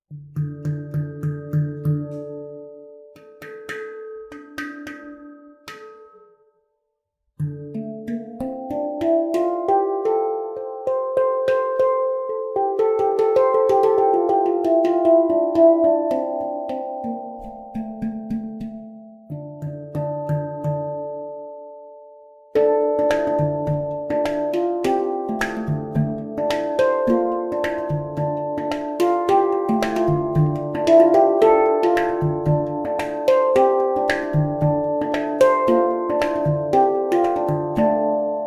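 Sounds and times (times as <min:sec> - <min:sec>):
ten-note handpan in D minor: 0:00.1 - 0:06.6, 0:07.4 - 0:38.4.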